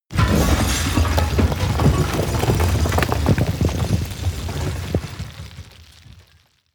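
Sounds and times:
large explosion with shrapnel: 0.1s - 5.5s.

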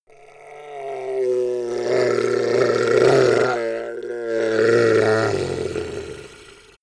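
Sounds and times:
goblin groaning weakly in pain: 0.1s - 6.8s.

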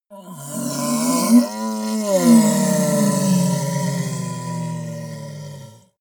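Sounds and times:
dark hoarse monster growl: 0.1s - 6.0s.

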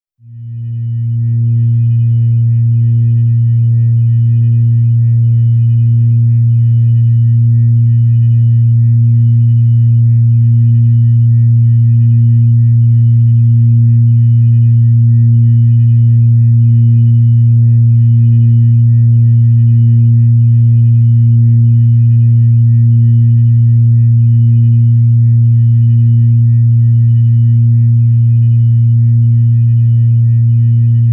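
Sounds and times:
organ tone A sharp: 0.4s - 31.1s.

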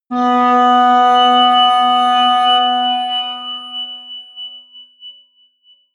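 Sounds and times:
high atmospheric feedback synthesizer drones: 0.1s - 4.6s.

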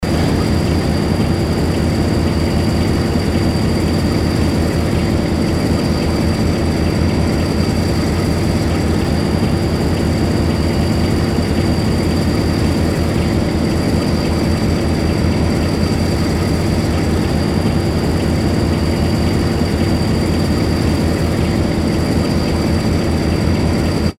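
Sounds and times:
train engine: 0.0s - 24.1s.

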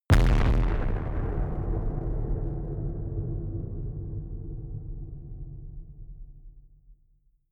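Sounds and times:
distorted explosions in stereo: 0.1s - 5.8s.

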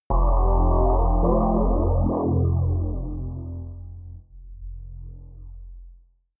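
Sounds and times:
atmospheric synth bounce with flanger: 0.0s - 5.7s
drones: 0.1s - 5.8s.

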